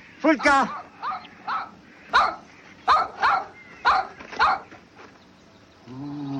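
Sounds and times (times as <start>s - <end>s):
speech: 0.2s - 0.8s
dog barking: 0.4s - 4.7s.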